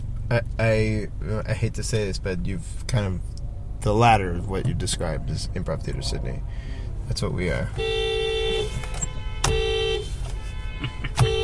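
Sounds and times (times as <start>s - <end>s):
low rumble of street traffic: 0.0s - 11.4s
speech: 0.3s - 8.1s
car horns honking: 7.6s - 11.4s.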